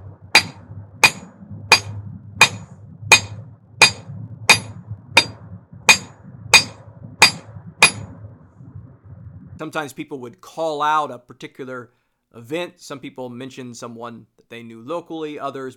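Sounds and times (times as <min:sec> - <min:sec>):
low rumble: 0:00.0 - 0:10.0
hammer pounding on a metal gun: 0:00.4 - 0:08.0
speech: 0:09.6 - 0:15.7.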